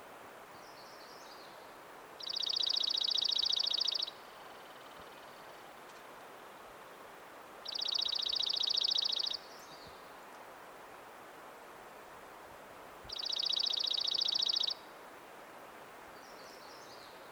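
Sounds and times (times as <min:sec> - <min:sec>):
quiet hiss: 0:00.0 - 0:17.3
Dark-eyed junco Junco hyemalis trilling: 0:02.2 - 0:04.9, 0:07.6 - 0:09.4, 0:13.1 - 0:14.8.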